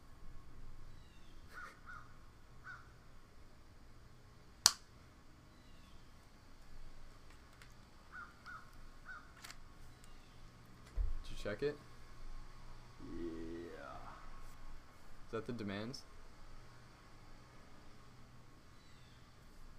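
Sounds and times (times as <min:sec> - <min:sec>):
steady hiss: 0:00.0 - 0:19.7
crow cawing: 0:01.6 - 0:02.9, 0:08.1 - 0:09.3
sharp snap-like click: 0:04.6 - 0:04.9
speech: 0:11.5 - 0:11.9, 0:15.3 - 0:16.1.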